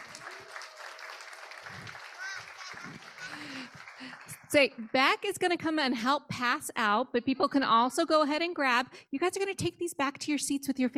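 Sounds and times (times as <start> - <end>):
people cheering: 0.0 - 4.9
crowd applauding for a group of children: 0.0 - 5.2
speech: 4.0 - 10.9.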